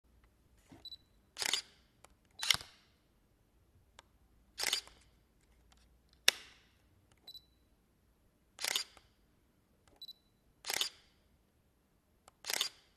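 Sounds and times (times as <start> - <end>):
camera shutter: 1.4 - 1.8, 2.4 - 2.9, 4.6 - 5.1, 8.6 - 9.1, 10.6 - 11.2, 12.4 - 12.9.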